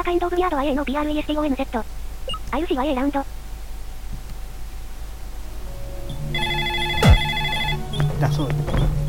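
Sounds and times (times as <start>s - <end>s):
speech: 0.0s - 3.4s, 8.2s - 8.9s
electronic telephone ring tone after a number is dialed: 6.3s - 8.0s.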